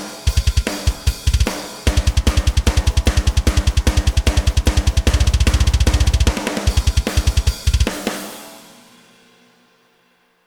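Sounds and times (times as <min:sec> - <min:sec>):
double bass drums: 0:00.5 - 0:08.1.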